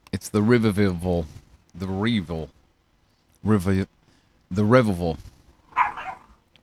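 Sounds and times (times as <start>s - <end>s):
speech: 0.4s - 2.6s, 3.4s - 5.3s
dog barking: 5.8s - 6.3s.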